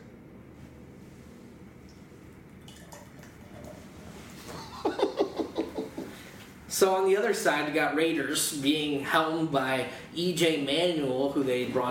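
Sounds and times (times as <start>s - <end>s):
beer pouring into a glass: 2.0s - 3.9s
laughter: 4.5s - 6.2s
speech: 6.8s - 11.8s.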